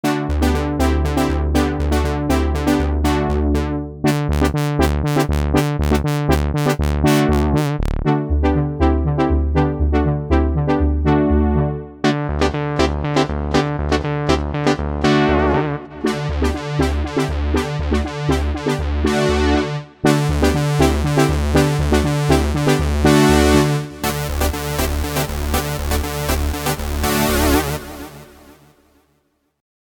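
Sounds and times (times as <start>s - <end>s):
synth brass: 0.0s - 29.0s.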